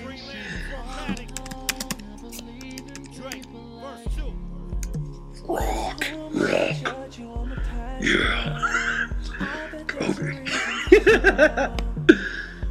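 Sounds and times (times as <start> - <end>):
people talking quietly: 0.0 - 12.6
typing on an Apple computer keyboard: 1.1 - 3.5
speech: 8.0 - 8.7
laughter: 8.0 - 12.5.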